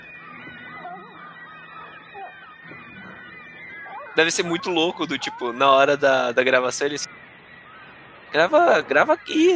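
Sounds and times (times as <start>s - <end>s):
parakeets squawking and screeching: 0.7s - 5.5s
speech: 4.2s - 7.1s, 8.3s - 9.5s.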